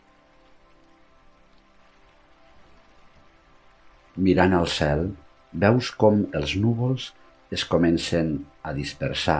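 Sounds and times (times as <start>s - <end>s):
light rain pattering on a surface after a thunderstorm: 0.0s - 9.3s
speech: 4.2s - 9.3s.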